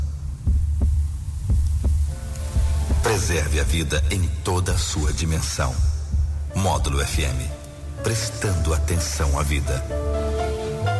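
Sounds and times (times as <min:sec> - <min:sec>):
deep heartbeat: 0:00.0 - 0:04.1, 0:05.0 - 0:07.3
speech: 0:03.2 - 0:05.9, 0:06.6 - 0:10.7.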